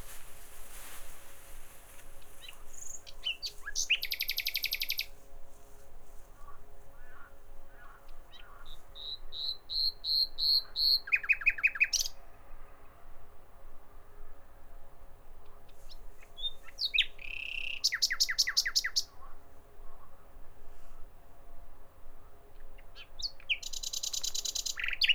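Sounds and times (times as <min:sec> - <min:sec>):
common nightingale song: 0:00.0 - 0:05.2, 0:06.4 - 0:12.2, 0:15.9 - 0:19.2, 0:22.7 - 0:25.1.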